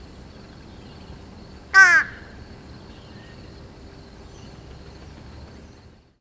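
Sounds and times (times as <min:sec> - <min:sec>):
faint background hum: 0:00.0 - 0:06.1
fish crow cawing: 0:01.7 - 0:02.4.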